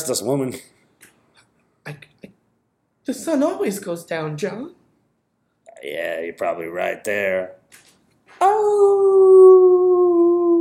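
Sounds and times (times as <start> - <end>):
speech: 0.0 - 0.8, 1.8 - 2.1, 3.1 - 4.8, 5.8 - 7.8, 8.4 - 10.5
coyote howling: 8.4 - 10.5.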